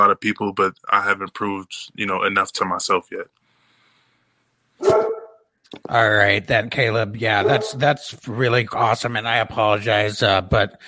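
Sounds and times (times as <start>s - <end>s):
speech: 0.0s - 3.4s, 4.8s - 5.1s, 5.7s - 10.8s
dog barking: 4.8s - 5.4s, 7.4s - 7.9s.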